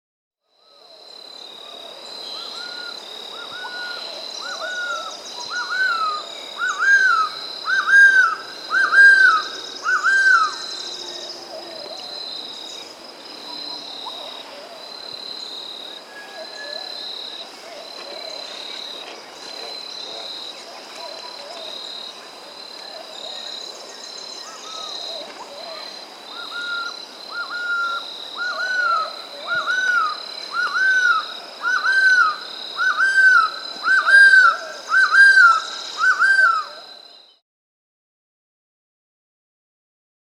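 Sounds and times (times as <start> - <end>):
Golden-Headed Quetzal Pharomachrus auriceps calling in the Andes: 3.5 - 11.3, 26.4 - 36.8.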